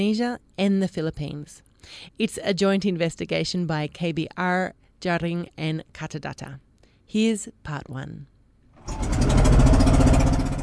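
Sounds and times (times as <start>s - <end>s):
speech: 0.0s - 9.1s
small boat motor running through choppy water: 8.8s - 10.6s.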